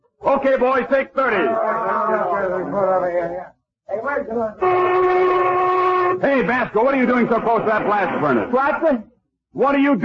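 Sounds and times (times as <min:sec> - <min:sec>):
speech: 0:00.2 - 0:10.0
factory lunch whistle blowing a steady blast: 0:04.6 - 0:06.2.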